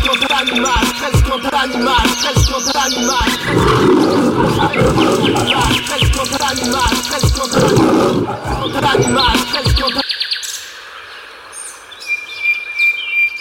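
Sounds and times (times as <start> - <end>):
chirping: 0.0 - 10.0
bird calls in radio jingle: 0.0 - 13.4
loud busy radio jingle with punchy rhythmic beat: 3.1 - 10.0
animal roars in radio jingle: 3.4 - 9.4.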